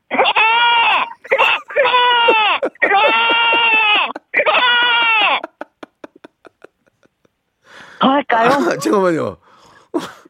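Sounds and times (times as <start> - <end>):
person imitating goat bleats: 0.3 - 5.5
laughter: 0.8 - 7.3, 8.4 - 9.2
speech: 8.4 - 9.4, 10.0 - 10.2.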